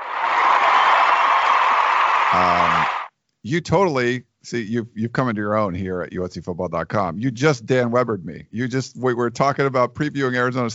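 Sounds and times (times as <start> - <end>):
canned applause from a crowd: 0.0 - 3.1
speech: 2.3 - 10.7.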